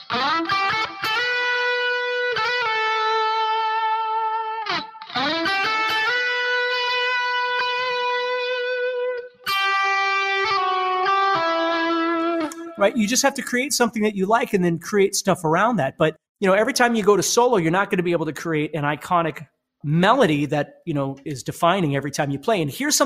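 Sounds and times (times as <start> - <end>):
distorted electric guitar with delay playing a slow melodic line: 0.0 - 12.9
speech: 12.8 - 23.0.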